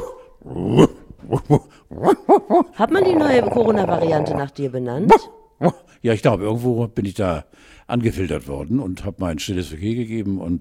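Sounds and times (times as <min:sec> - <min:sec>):
person imitating a dog barking: 0:00.0 - 0:04.5, 0:05.1 - 0:05.9
speech: 0:00.4 - 0:10.5.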